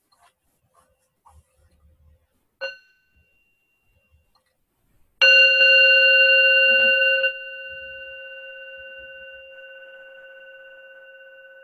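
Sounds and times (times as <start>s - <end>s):
bell ringing: 2.6s - 4.3s, 5.2s - 11.6s.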